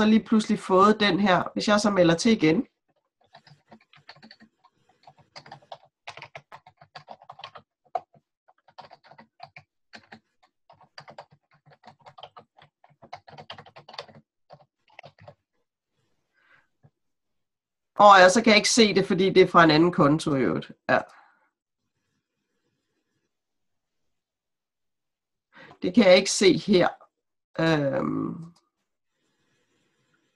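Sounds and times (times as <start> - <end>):
speech: 0.0 - 2.7, 18.0 - 21.2, 25.8 - 27.0, 27.6 - 28.6
typing on a computer keyboard: 2.9 - 15.4.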